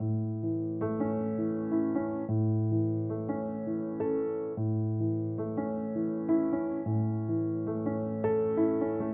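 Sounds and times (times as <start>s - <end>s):
piano loop in six-eight time: 0.0s - 9.1s.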